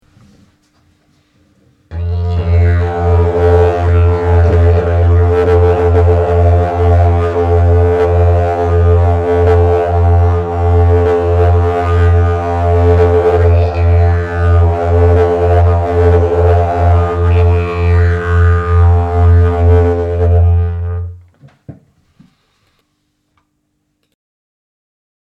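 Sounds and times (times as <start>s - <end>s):
binaural didgeridoo drone: 1.9s - 21.2s.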